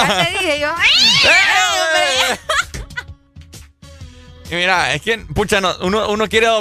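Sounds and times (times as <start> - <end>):
speech: 0.0 - 2.7, 4.5 - 6.5
laughter: 0.0 - 3.1
cat yowling as cats are about to fight: 0.8 - 2.4.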